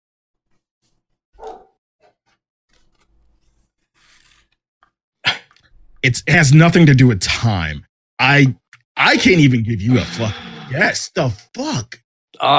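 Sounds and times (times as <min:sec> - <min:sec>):
dog barking: 0:01.4 - 0:01.8
speech: 0:06.0 - 0:12.5.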